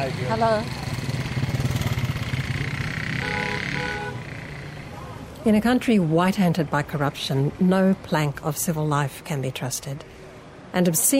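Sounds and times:
speech: 0.0s - 0.8s, 5.4s - 10.1s, 10.8s - 11.1s
motorbike taxi engine riding along: 0.0s - 5.2s.

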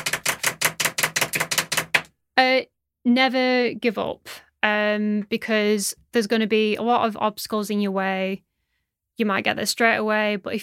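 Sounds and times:
two pens drumming a drum roll on a hard surface: 0.0s - 2.1s
speech: 2.4s - 8.5s, 9.2s - 10.6s.

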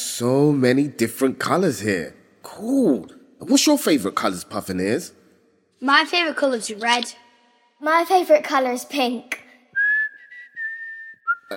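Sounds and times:
speech: 0.2s - 5.2s, 5.8s - 7.2s, 7.8s - 9.4s
person whistling while tidying: 9.8s - 11.5s.

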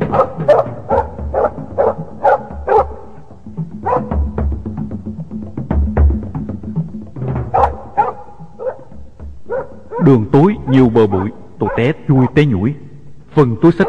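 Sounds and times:
dogs barking: 0.0s - 4.4s, 7.5s - 12.3s, 13.6s - 13.8s
speech: 10.9s - 13.8s.

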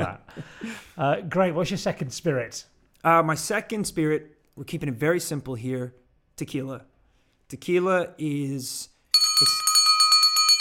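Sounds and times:
speech: 0.0s - 6.9s, 7.5s - 9.7s
bell ringing with rapid repeated strikes: 9.1s - 10.5s.

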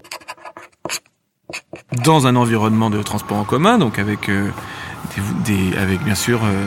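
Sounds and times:
pencil scratching across a paper page: 0.0s - 2.2s
speech: 1.9s - 6.6s.

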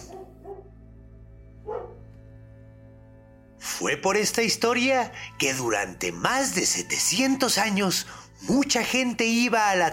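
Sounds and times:
dog barking short sharp woofs: 0.0s - 0.8s, 1.6s - 2.1s
speech: 0.4s - 0.9s, 3.8s - 9.9s.

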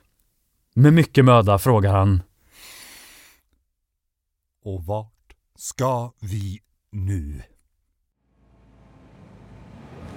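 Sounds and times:
speech: 0.8s - 2.3s, 4.6s - 7.5s
brief faint catch of breath: 2.4s - 3.5s
single long heavy airy exhale: 2.5s - 3.4s.

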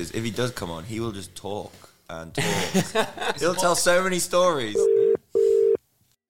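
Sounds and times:
speech: 0.0s - 4.9s
faint noise: 0.0s - 6.2s
laughter: 2.4s - 3.9s
telephone ringing tone: 4.8s - 5.8s.

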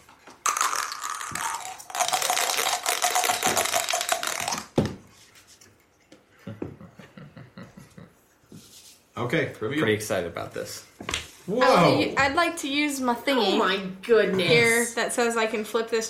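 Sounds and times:
dice rattling in a cup during a dice game: 0.4s - 4.8s
speech: 9.2s - 10.9s, 11.5s - 16.0s.

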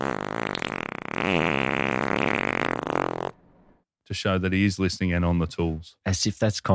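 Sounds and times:
fart sound effect: 0.0s - 3.4s
speech: 4.1s - 6.7s.

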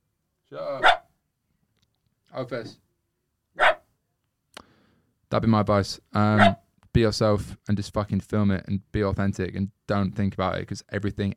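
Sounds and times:
speech: 0.5s - 1.0s, 2.4s - 2.8s, 5.3s - 11.3s
dog barking: 0.8s - 1.1s, 3.6s - 3.9s, 6.4s - 6.6s.

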